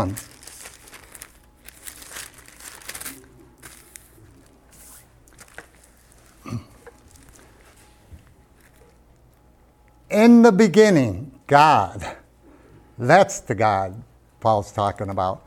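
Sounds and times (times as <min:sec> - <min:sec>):
speech: 0:00.0 - 0:00.4, 0:10.1 - 0:12.2, 0:13.0 - 0:15.4
paper rustling and crinkling while marking a Bible page: 0:00.0 - 0:09.4.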